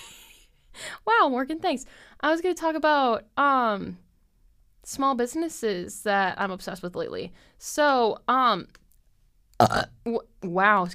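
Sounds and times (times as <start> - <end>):
speech: 1.2 - 4.0, 4.8 - 8.8, 9.6 - 10.9
person burping during casual chat: 9.6 - 10.0.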